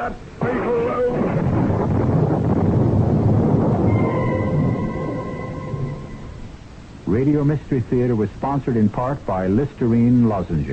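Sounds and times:
speech: 0.0 - 1.1, 7.1 - 10.7
storm wind roaring: 0.0 - 7.1
deep thunder-like rumbling: 0.0 - 7.5.

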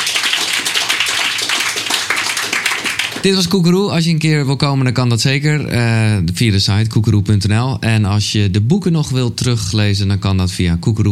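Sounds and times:
crowd applauding a guest: 0.0 - 3.5
speech: 3.2 - 11.1.

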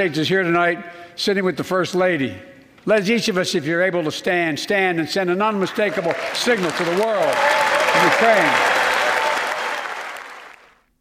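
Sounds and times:
speech: 0.0 - 8.8
large audience applauding in a big legislative chamber: 5.7 - 10.9.

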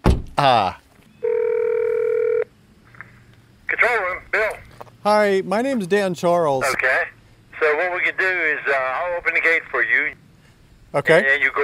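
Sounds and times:
short thump: 0.0 - 0.4
speech: 0.4 - 0.8, 5.0 - 10.2, 10.9 - 11.6
electronic telephone tone from a phone at a guardhouse: 1.2 - 2.5.

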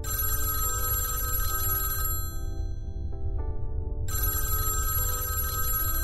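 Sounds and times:
telephone bell ringing: 0.1 - 2.8, 4.1 - 6.0.

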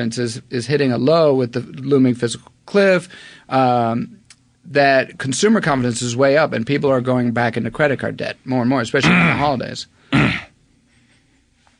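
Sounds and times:
speech: 0.0 - 10.4
harsh throat clearing: 9.0 - 9.5, 10.1 - 10.6.

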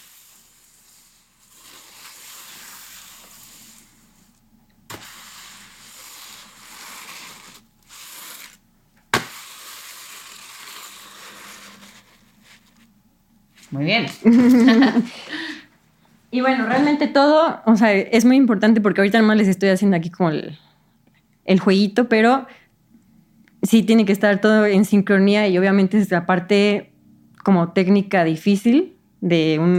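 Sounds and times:
broom sweeping a broken folded cardboard box imitating sea waves: 0.0 - 12.9
speech: 13.7 - 15.4, 16.3 - 20.7, 21.5 - 22.6, 23.6 - 29.7
laughter: 14.2 - 15.3.

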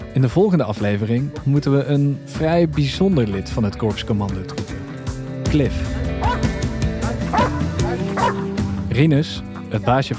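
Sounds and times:
speech: 0.2 - 4.8, 5.5 - 6.0, 9.0 - 10.1
dog barking in short yelping bursts: 6.2 - 8.5.

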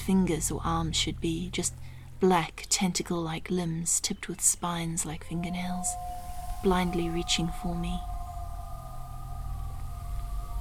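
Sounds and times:
speech: 0.0 - 8.1
eerie whale-song chord: 5.0 - 10.6
deep almost subsonic low groan: 5.1 - 10.6.

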